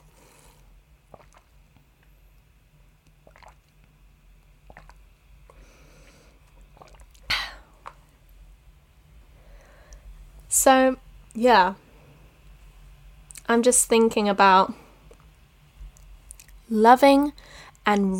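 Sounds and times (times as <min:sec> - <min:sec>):
person drinking water with soft wet clicks and sips: 0:00.1 - 0:01.6, 0:03.2 - 0:03.8, 0:04.6 - 0:05.0, 0:06.0 - 0:08.1
loud gulp while drinking water: 0:01.1 - 0:01.5, 0:03.2 - 0:03.6, 0:04.7 - 0:05.0, 0:06.5 - 0:08.0
speech: 0:10.6 - 0:11.8, 0:13.5 - 0:14.8, 0:16.7 - 0:18.1.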